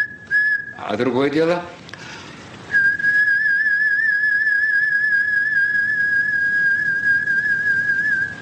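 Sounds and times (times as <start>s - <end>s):
person whistling through lips with vibrato: 0.0s - 0.8s, 2.7s - 8.4s
speech: 0.8s - 1.8s.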